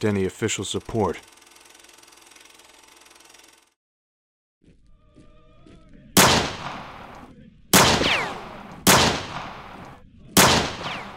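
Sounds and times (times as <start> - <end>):
speech: 0.0 - 1.4
gunshots: 6.2 - 11.1.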